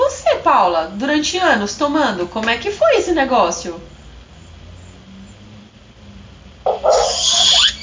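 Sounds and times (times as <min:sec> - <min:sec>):
speech: 0:00.5 - 0:03.9
dog whining, drawn-out and high-pitched: 0:06.7 - 0:07.8.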